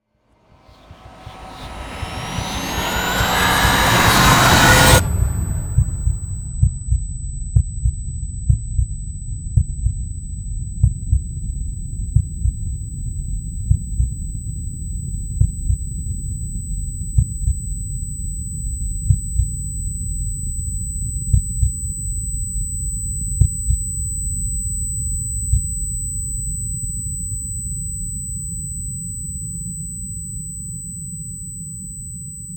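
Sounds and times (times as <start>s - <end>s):
low drone: 0.3s - 7.4s
big cinematic impact: 0.4s - 7.3s
heartbeat: 0.5s - 28.3s.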